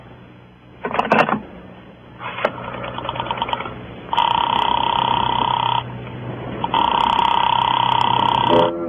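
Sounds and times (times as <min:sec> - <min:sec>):
clicks and crackly telephone line noise: 0:00.8 - 0:01.5, 0:02.2 - 0:05.9, 0:06.5 - 0:08.7
telephone ringing tone heard through the receiver: 0:02.7 - 0:05.9, 0:06.6 - 0:08.7.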